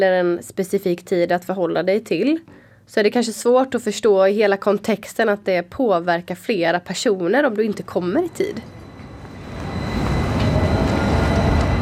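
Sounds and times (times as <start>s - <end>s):
speech: 0.0s - 8.8s
tram rumbling along its rails: 7.8s - 11.7s.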